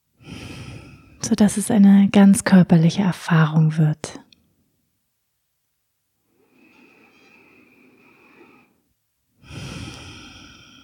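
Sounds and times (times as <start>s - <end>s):
slow deep breathing in and out: 0.2s - 1.2s, 6.2s - 10.8s
speech: 1.3s - 4.2s.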